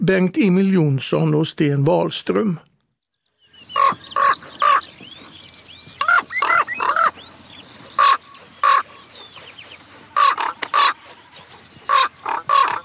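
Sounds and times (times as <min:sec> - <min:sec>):
speech: 0:00.0 - 0:02.7
raven calling in flight: 0:03.7 - 0:05.0, 0:06.0 - 0:07.3, 0:08.0 - 0:12.8.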